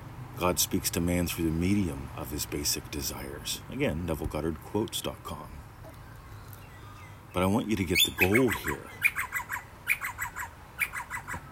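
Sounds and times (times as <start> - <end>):
speech: 0.4 - 5.6, 7.4 - 9.2
pet bird squawking: 5.8 - 11.5.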